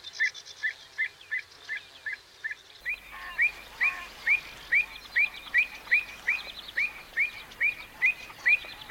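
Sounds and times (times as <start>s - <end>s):
avocet calling bright upward-inflected kluit notes: 2.8s - 8.8s.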